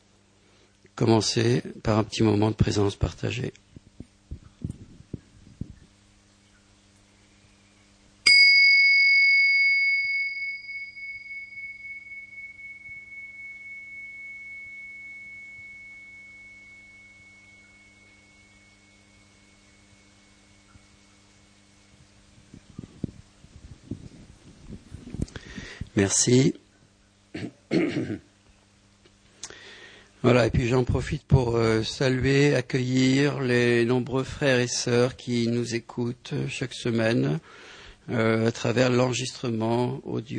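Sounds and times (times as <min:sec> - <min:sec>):
faint low hum: 0:00.0 - 0:40.3
speech: 0:01.0 - 0:03.7, 0:26.0 - 0:26.6, 0:30.3 - 0:40.3
small bell struck at a group gathering: 0:08.3 - 0:21.6.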